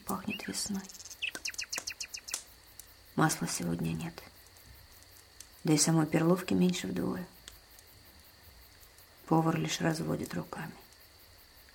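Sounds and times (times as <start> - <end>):
nightingale singing trills: 0.0 - 2.9
speech: 0.1 - 1.0, 3.2 - 4.3, 5.6 - 7.4, 9.3 - 10.8.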